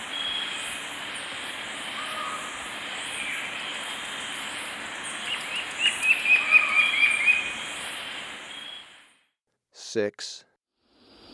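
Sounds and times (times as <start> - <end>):
Brown-billed scythebill whistled song in Ecuador: 0.0 - 0.8, 5.1 - 7.7, 8.5 - 8.9
steady high background hiss: 0.0 - 9.1
speech: 10.0 - 10.5.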